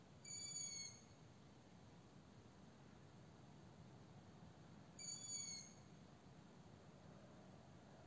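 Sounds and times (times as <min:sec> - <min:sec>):
faint background hiss: 0:00.0 - 0:08.0
owl making a high clear whistled note: 0:00.2 - 0:01.0, 0:05.0 - 0:05.8.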